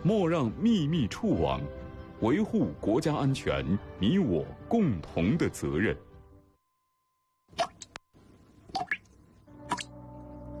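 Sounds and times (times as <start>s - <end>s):
speech: 0.0s - 6.1s
faint steady hum: 6.5s - 9.5s
water dripping from a leaky faucet: 8.7s - 10.0s.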